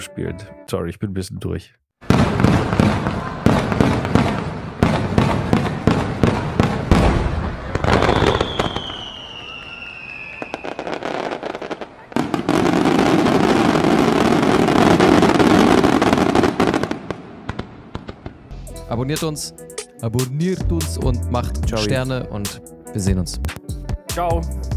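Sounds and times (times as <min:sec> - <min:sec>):
speech: 0:00.0 - 0:04.1, 0:19.0 - 0:23.5, 0:24.2 - 0:24.6
firecrackers exploding in sharp pops: 0:02.0 - 0:18.4
whistling rocket streak: 0:07.0 - 0:12.4.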